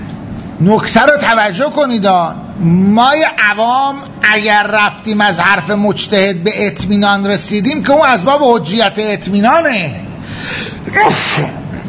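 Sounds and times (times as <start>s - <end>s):
speech: 0.6s - 11.6s
person sneezing: 10.5s - 11.8s.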